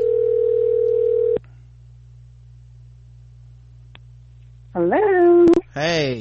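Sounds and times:
outgoing phone call telephone dial tone: 0.0 - 1.4
low hum: 0.0 - 6.1
speech: 4.8 - 5.2, 5.8 - 6.1.

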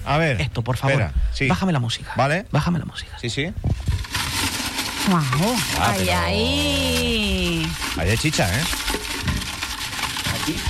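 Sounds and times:
speech: 0.0 - 4.1, 5.1 - 8.9, 10.5 - 10.6
hand rummaging through paper slips in a raffle urn: 3.8 - 10.6.

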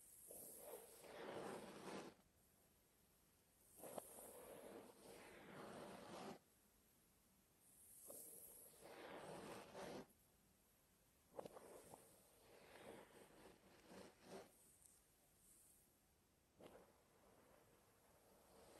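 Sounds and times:
dry scratching and rubbing on hair and scalp: 0.0 - 2.2, 3.8 - 6.4, 7.8 - 10.1, 11.3 - 15.8.

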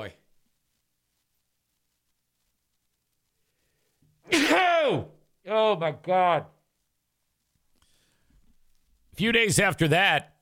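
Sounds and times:
speech: 0.0 - 0.2, 4.9 - 6.6, 9.2 - 10.3
single loud sneeze: 4.3 - 5.1
faint intake of breath: 7.8 - 8.4.

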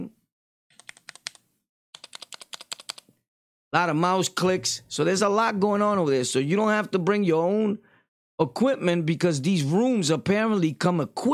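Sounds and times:
typing on a 60% gaming keyboard: 0.7 - 3.1
speech: 3.7 - 11.3.

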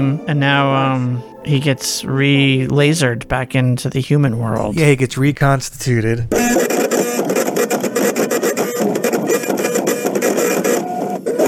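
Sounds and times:
speech: 0.0 - 6.7
computer printer printing out pages: 6.3 - 11.4.

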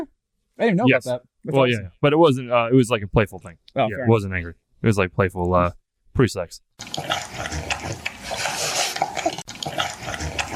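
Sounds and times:
speech: 0.0 - 8.0
dog drinking water, lapping: 6.8 - 10.5.

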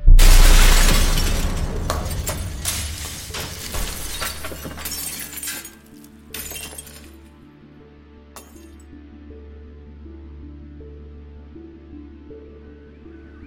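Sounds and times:
all the glass in a house shattering: 0.0 - 7.2, 8.4 - 8.8
falling glass shards tinkling: 0.2 - 7.2, 8.4 - 8.8.

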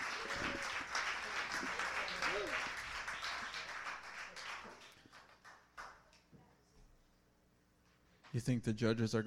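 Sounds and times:
audience applause: 0.0 - 5.9
speech: 8.4 - 9.2.

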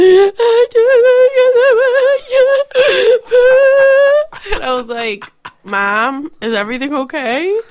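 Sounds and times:
voice imitating a mother sobbing over the phone: 0.0 - 5.6
speech: 5.1 - 7.6.

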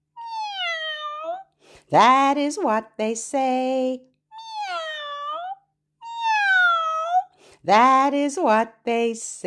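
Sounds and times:
human voice imitating a drawn-out cat meow: 0.2 - 1.5, 4.3 - 7.3
speech: 1.9 - 4.1, 7.6 - 9.4.

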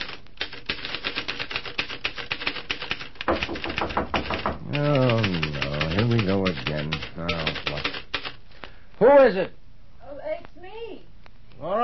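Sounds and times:
typewriter keys clacking: 0.0 - 8.4
speech: 9.0 - 9.6.

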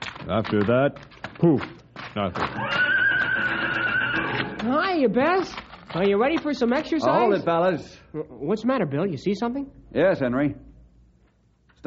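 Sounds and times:
speech: 0.3 - 3.6, 4.6 - 10.7
horse neighing: 2.5 - 4.8.

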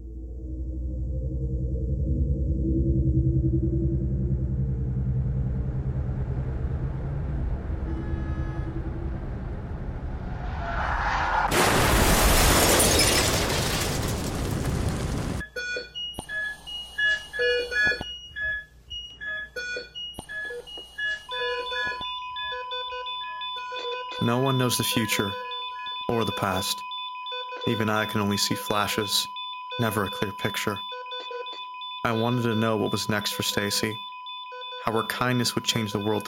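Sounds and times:
car engine rumbling: 0.4 - 12.7
loud harsh car crash: 6.1 - 15.4
electronic beeps and warning tones: 15.4 - 36.2
speech: 24.3 - 25.4, 26.4 - 26.9, 27.6 - 30.9, 32.0 - 34.1, 34.8 - 36.2.

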